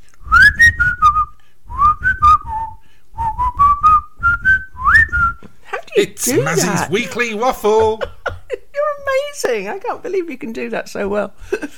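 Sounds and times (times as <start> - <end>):
person whistling a fanfare-like tune: 0.2 - 5.4
speech: 6.0 - 8.2, 9.4 - 11.7
laughter: 6.0 - 8.7.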